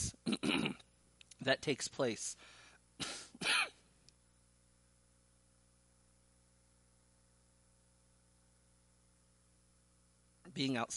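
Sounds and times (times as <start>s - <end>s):
person coughing harshly: 0.0s - 0.8s, 3.0s - 3.8s
speech: 1.5s - 3.1s, 10.6s - 10.9s.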